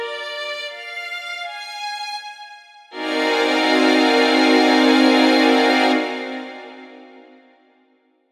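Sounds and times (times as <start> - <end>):
m7b5b13 chord: 2.9 - 7.7.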